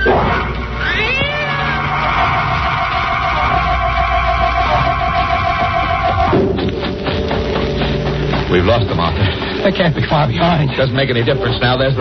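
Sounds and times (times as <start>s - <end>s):
droning tones: 0.0s - 12.0s
cat meowing: 0.8s - 2.2s
speech: 8.7s - 12.0s.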